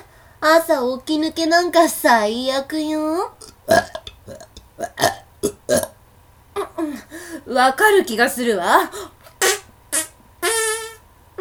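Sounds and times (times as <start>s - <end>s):
speech: 0.4s - 5.1s, 7.5s - 9.2s
loud croaky burps: 3.4s - 6.0s, 9.4s - 11.0s.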